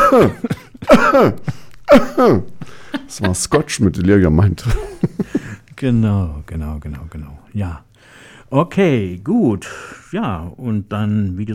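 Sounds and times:
hoarse coughs opening a song: 0:00.0 - 0:02.6
laughter: 0:00.0 - 0:05.7
speech: 0:00.1 - 0:07.9, 0:08.5 - 0:11.5.

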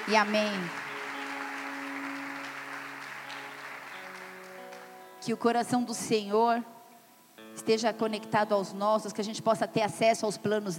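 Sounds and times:
audience applause: 0:00.0 - 0:05.2
speech: 0:00.1 - 0:00.8, 0:05.2 - 0:06.7, 0:07.6 - 0:10.7.

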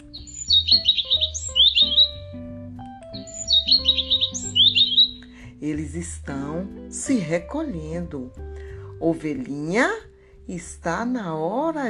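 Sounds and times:
small birds chirping and twittering at sunset: 0:00.0 - 0:05.4
gentle musical background with sustained low tones: 0:00.0 - 0:11.8
speech: 0:05.7 - 0:08.4, 0:09.0 - 0:11.8.

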